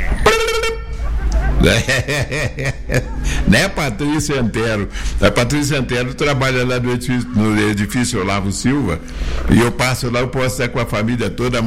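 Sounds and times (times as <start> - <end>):
car horn honking: 0.0 - 1.2
laughter: 0.0 - 8.3
busy noise: 0.0 - 11.6
speech: 1.6 - 11.6.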